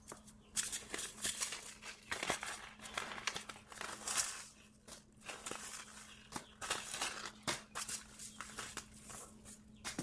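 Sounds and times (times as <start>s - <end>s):
seed packets crinkling and rustling while sorted: 0.0s - 10.0s.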